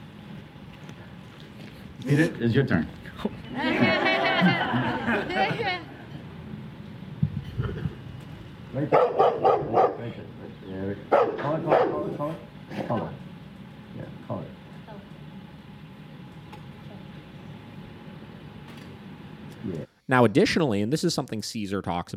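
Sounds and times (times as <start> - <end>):
laughter: 2.0 - 2.4, 3.5 - 6.2, 7.4 - 8.0
speech: 2.0 - 4.9, 8.8 - 13.2, 20.1 - 22.1
large Rottweiler barking in loud bursts: 8.9 - 10.2, 11.1 - 12.2.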